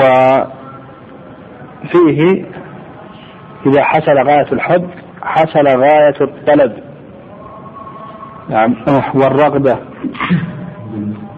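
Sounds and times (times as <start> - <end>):
speech: 1.8 - 2.6, 3.6 - 6.8, 8.5 - 11.3
person sneezing: 10.0 - 10.6.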